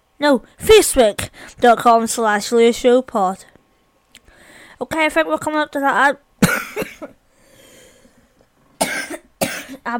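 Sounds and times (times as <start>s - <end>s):
speech: 0.2s - 3.5s, 4.8s - 7.1s
person coughing dry harsh coughs: 6.4s - 7.2s, 8.8s - 9.9s.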